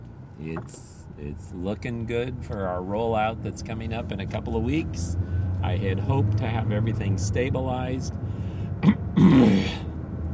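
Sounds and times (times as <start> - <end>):
speech: 0.4 - 8.2
throat clearing: 8.8 - 9.9.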